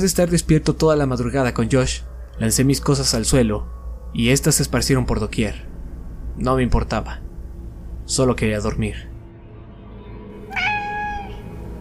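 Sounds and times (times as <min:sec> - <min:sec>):
speech: 0:00.0 - 0:05.7, 0:06.4 - 0:07.3, 0:08.1 - 0:09.1
low steady hum: 0:00.0 - 0:11.8
cat meowing: 0:10.5 - 0:11.6.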